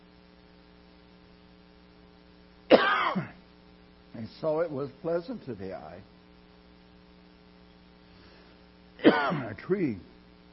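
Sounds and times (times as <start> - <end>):
single short harsh cough: 2.7 - 3.4, 9.0 - 9.6
speech: 4.3 - 6.2, 9.2 - 10.1.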